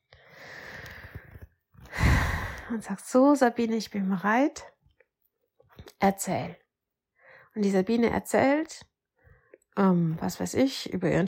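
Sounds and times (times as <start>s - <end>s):
deep breath in and out: 0.0s - 2.7s
speech: 2.7s - 4.7s, 6.0s - 6.6s, 7.6s - 8.9s, 9.8s - 11.2s.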